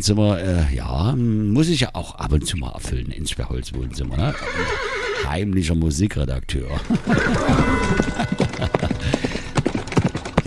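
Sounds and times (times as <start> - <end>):
speech: 0.0 - 8.4
laughter: 1.6 - 4.7, 6.6 - 9.7
horse hooves clip-clopping: 6.9 - 10.4.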